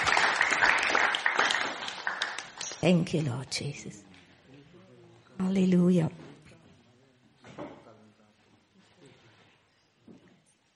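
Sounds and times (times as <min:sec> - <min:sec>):
church congregation applauding during a worship service: 0:00.0 - 0:03.1
speech: 0:02.8 - 0:04.1, 0:05.4 - 0:06.2.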